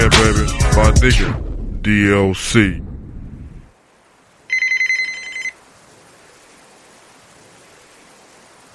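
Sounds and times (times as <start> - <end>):
speech: 0.2 - 2.9
low rumbling thump: 1.0 - 3.7
telephone ringing in a trilling burst: 4.5 - 5.6.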